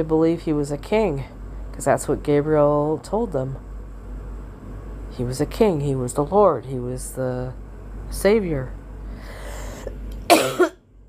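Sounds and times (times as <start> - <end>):
speech: 0.0 - 3.7, 5.2 - 9.4
low hum: 0.0 - 11.0
loud rasping cough: 10.3 - 10.8.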